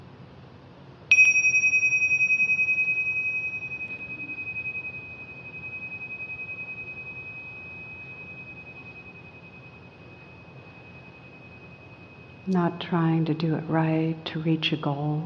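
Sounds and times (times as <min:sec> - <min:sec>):
single gong strike ringing with a metallic shimmer: 0:01.1 - 0:12.5
speech: 0:12.5 - 0:15.2.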